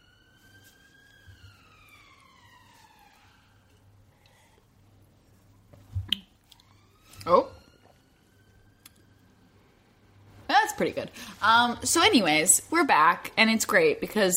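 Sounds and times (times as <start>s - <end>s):
police siren wailing outside: 0.0s - 5.5s, 6.3s - 10.2s
speech: 7.3s - 7.5s, 10.8s - 14.3s.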